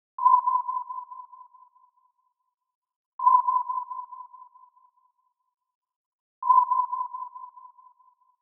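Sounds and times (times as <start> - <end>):
submarine sonar: 0.2 - 2.6, 3.2 - 5.6, 6.4 - 8.4.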